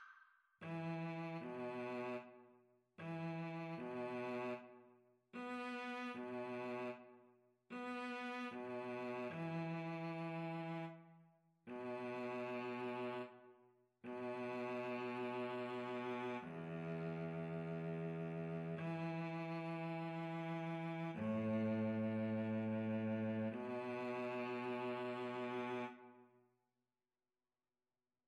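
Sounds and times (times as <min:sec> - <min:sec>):
viola and cello duet: 0:00.6 - 0:02.4, 0:03.0 - 0:04.7, 0:05.3 - 0:07.1, 0:07.7 - 0:11.1, 0:11.7 - 0:13.4, 0:14.1 - 0:26.2.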